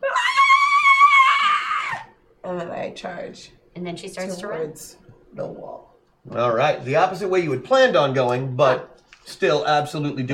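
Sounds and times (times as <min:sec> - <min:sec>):
person acting in character screaming high-pitched: 0:00.0 - 0:02.2
speech: 0:02.9 - 0:10.3.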